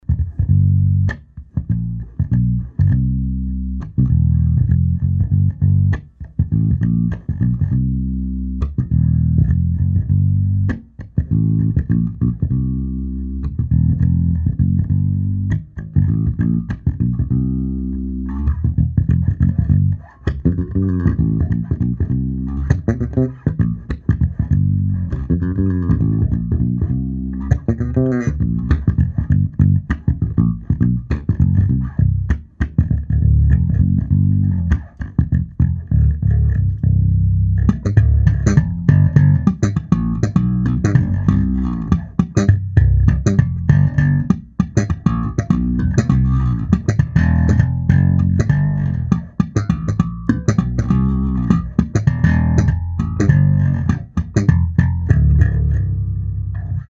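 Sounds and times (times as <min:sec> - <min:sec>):
bass through an amp: 0:00.0 - 0:56.9.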